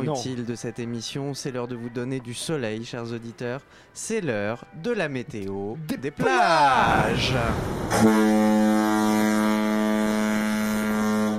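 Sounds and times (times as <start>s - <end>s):
speech: 0.0s - 8.8s
deep foghorn blast: 7.5s - 11.3s.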